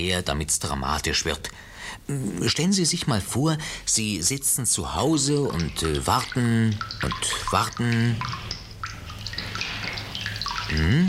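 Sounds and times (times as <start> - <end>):
speech: 0.0 - 8.5, 10.7 - 11.0
faint steady low hiss: 0.0 - 11.0
water tap dripping at home: 4.1 - 11.0.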